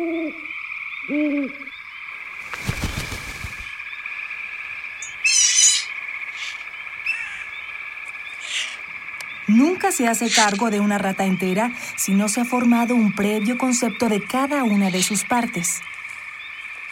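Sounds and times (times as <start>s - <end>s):
owl hooting: 0.0s - 1.8s, 5.0s - 10.9s
night insects buzzing: 0.0s - 16.8s
high chirps: 5.0s - 10.8s
speech: 9.9s - 16.0s.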